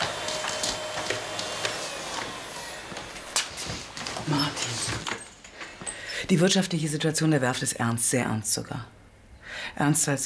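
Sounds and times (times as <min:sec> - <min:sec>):
vacuum cleaner running: 0:00.0 - 0:05.2
speech: 0:04.3 - 0:05.2, 0:06.3 - 0:09.0, 0:09.8 - 0:10.2.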